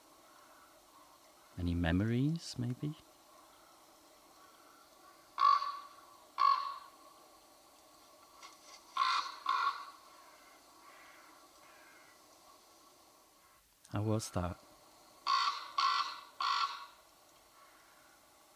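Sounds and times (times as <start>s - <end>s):
faint steady hiss: 0.0s - 18.5s
speech: 1.6s - 3.1s, 14.0s - 14.6s
raven croaking: 3.3s - 7.1s, 8.9s - 12.2s, 15.2s - 18.2s.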